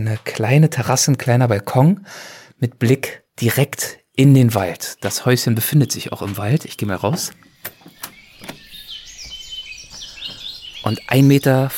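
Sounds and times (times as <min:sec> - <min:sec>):
speech: 0:00.0 - 0:07.5, 0:10.8 - 0:11.7
birds chirping and warbling in a forest: 0:04.1 - 0:11.7
sharp clicks and knocks: 0:06.2 - 0:10.4.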